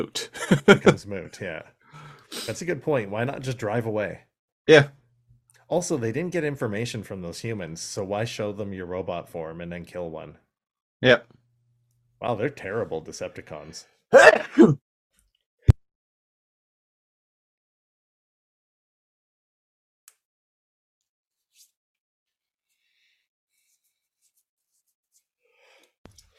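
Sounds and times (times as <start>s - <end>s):
speech: 0.0s - 5.0s, 5.7s - 10.4s, 11.0s - 11.4s, 12.2s - 14.8s
laughter: 0.2s - 1.0s
person sneezing: 14.2s - 14.8s.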